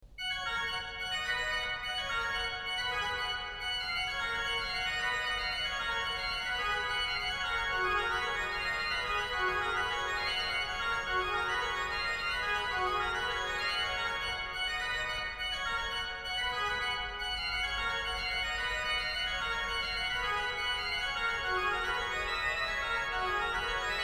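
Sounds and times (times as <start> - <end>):
organ piece: 0.4 - 24.0.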